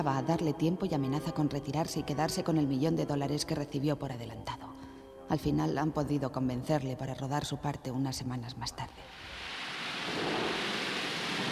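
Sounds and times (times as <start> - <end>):
speech: 0.0 - 9.4
torrential rain with a typhoon approaching: 9.1 - 11.5.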